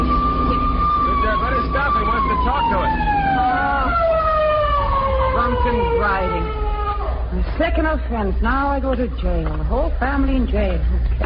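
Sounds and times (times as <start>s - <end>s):
police car siren wailing while chasing a car: 0.0s - 7.4s
speech: 7.6s - 11.2s.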